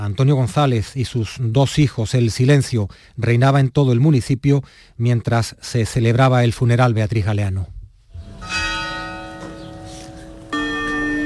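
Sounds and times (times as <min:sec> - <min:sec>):
speech: 0:00.0 - 0:07.8
parish church bells tolling at a funeral in Morón Spain: 0:08.2 - 0:11.2.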